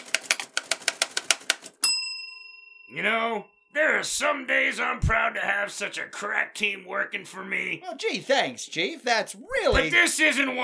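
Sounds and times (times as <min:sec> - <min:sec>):
new typewriter key strikes: 0:00.0 - 0:01.9
typewriter carriage bell ringing: 0:00.0 - 0:02.6
speech: 0:02.9 - 0:10.6.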